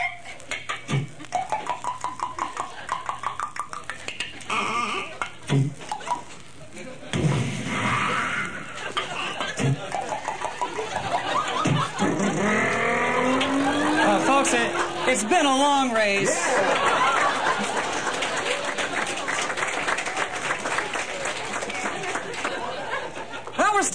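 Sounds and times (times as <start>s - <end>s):
laughter: 0.0s - 23.6s
race car engines revving while downshifting into a corner: 12.0s - 15.3s
race car tires squealing: 12.3s - 15.0s.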